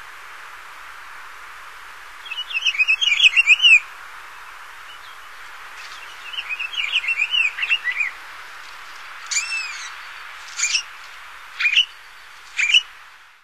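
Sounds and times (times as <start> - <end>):
Pine Grosbeak song of a rich warbled phrase and short separate notes: 2.2 - 12.9.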